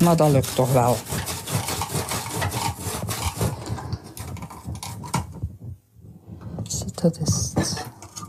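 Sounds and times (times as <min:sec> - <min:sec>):
speech: 0:00.0 - 0:01.4, 0:07.0 - 0:07.7
sharp knife cutting through hard fennel under firm pressure: 0:00.0 - 0:03.7.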